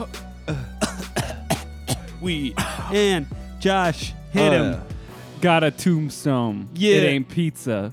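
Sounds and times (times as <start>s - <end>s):
rough hacking coughs: 0.5s - 3.0s
speech: 2.2s - 7.9s.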